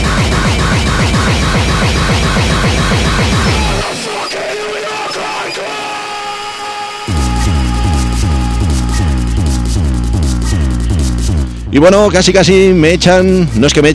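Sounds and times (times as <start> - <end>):
relentless distorted speedcore kick drums: 0.0 - 4.2, 7.1 - 13.9
harsh grinding distorted guitars: 0.0 - 13.9
speech: 11.8 - 13.9.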